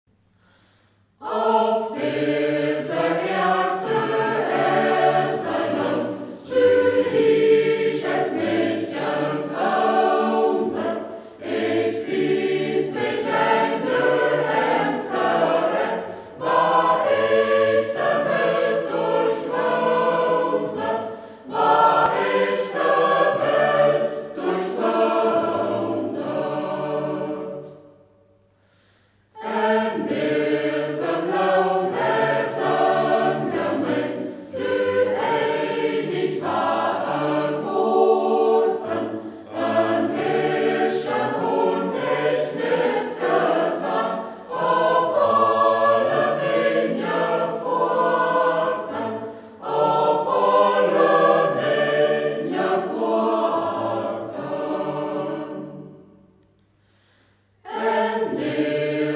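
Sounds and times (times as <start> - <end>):
choir singing: 1.2 - 28.2, 29.3 - 56.4, 57.5 - 59.1.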